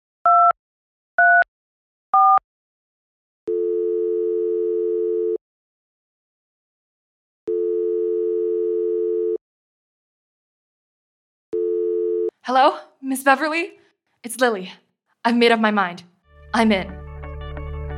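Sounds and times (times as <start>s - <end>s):
dual-tone telephone dialing beeps: 0.3s - 0.6s, 2.2s - 2.4s
telephone ringback tone: 3.5s - 5.4s, 7.5s - 9.4s, 11.6s - 12.3s
speech: 12.5s - 17.0s.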